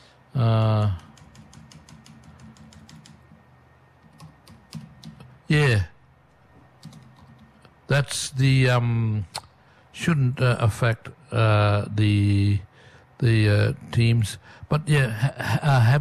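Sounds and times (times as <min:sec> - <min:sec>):
speech: 0:00.4 - 0:00.6, 0:08.0 - 0:09.4, 0:10.0 - 0:16.0
rapid light computer keyboard typing: 0:00.6 - 0:03.4, 0:04.0 - 0:05.3, 0:06.8 - 0:07.6.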